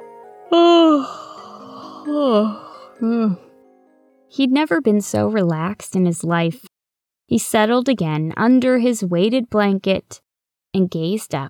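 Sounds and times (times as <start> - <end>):
soft steady music: 0.0 - 6.7
speech: 0.5 - 1.2, 2.0 - 3.5, 4.3 - 6.7, 7.3 - 11.4
narrator performing a yawn: 0.5 - 3.5.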